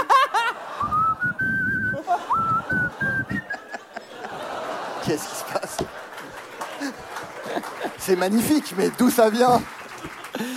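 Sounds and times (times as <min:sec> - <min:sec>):
laughter: 0:00.0 - 0:10.5
person whistling a slow song melody: 0:00.8 - 0:03.7
speech: 0:05.1 - 0:06.0, 0:08.0 - 0:09.8.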